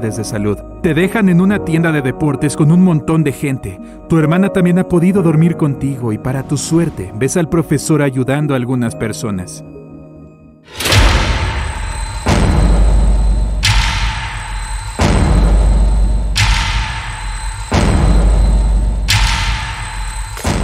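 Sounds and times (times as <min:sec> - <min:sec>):
speech: 0:00.0 - 0:09.8
heavy booming explosion blasts in a shopping mall: 0:10.7 - 0:20.6.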